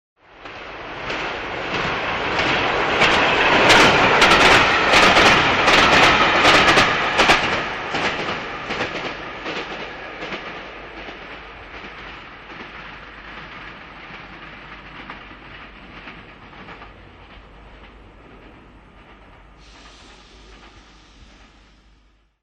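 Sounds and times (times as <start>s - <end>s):
fast electric train driving by: 0.2s - 22.4s.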